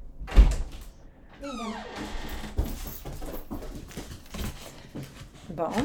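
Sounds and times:
door being unlatched and opened for a dog: 0.2s - 3.4s
speech: 5.6s - 5.8s.

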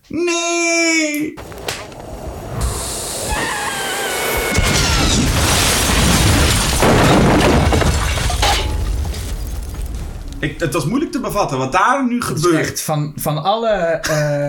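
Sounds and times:
speech: 0.1s - 0.5s, 10.4s - 14.4s
explosion after cigar hits stove: 2.1s - 11.5s
roar of debris and shattering crackling noise: 3.9s - 11.1s.

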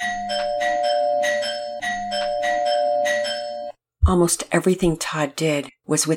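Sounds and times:
doorbell ringing: 0.0s - 3.8s
speech: 4.1s - 6.1s.

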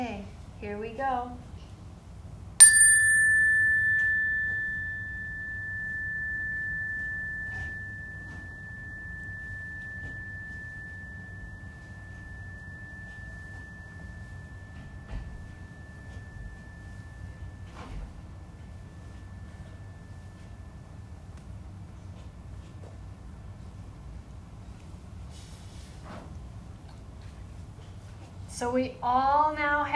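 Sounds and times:
speech: 0.0s - 1.5s, 28.6s - 29.9s
chime ringing: 2.6s - 21.2s.

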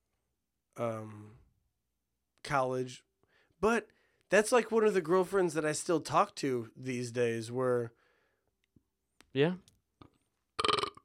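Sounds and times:
speech: 0.8s - 1.4s, 2.4s - 8.0s, 9.3s - 9.7s
loud deep belch: 10.6s - 11.0s.

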